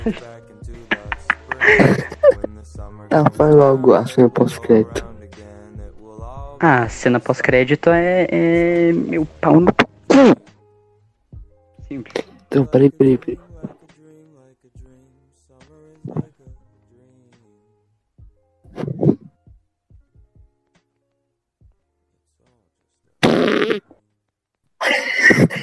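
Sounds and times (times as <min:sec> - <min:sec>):
speech: 0:00.0 - 0:00.4, 0:01.6 - 0:02.2, 0:03.1 - 0:05.1, 0:06.6 - 0:10.4, 0:11.9 - 0:13.4, 0:16.0 - 0:16.3
laughter: 0:00.0 - 0:02.5
person blowing sputtering fart noises into a microphone: 0:09.6 - 0:10.5, 0:16.0 - 0:16.3, 0:18.7 - 0:19.4, 0:23.2 - 0:24.0.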